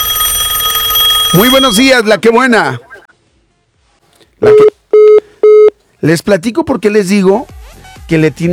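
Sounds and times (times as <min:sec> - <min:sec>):
telephone line tones after caller hangs up: 0:00.0 - 0:01.9
speech: 0:01.3 - 0:02.9, 0:04.4 - 0:04.7, 0:06.0 - 0:08.5.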